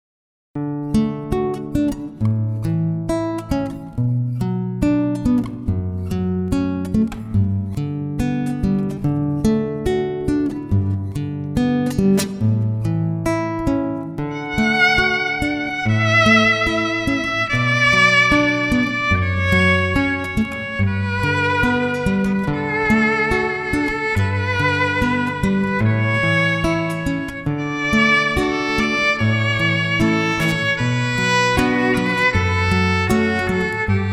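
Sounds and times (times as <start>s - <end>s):
acoustic guitar in an acoustic duo: 0.6s - 34.1s
violin in an acoustic duo: 14.3s - 34.1s.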